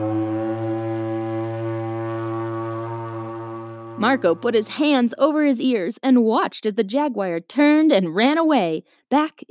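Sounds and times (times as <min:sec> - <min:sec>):
loud sustained trumpet blast: 0:00.0 - 0:05.0
speech: 0:04.0 - 0:09.5.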